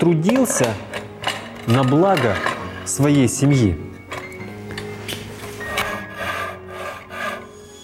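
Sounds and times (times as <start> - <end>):
speech: 0.0 - 0.9, 1.6 - 3.9
hand saw or plane working through wood: 5.8 - 7.8.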